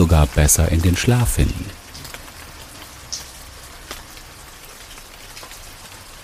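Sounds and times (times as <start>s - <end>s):
steady rain pouring in a dense even hiss: 0.0s - 6.2s
speech: 0.1s - 1.8s.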